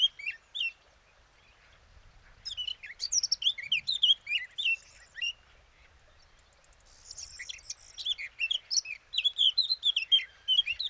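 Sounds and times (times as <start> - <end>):
Eurasian blackcap Sylvia atricapilla song: 0.0 - 1.6, 2.4 - 5.5, 6.2 - 10.8.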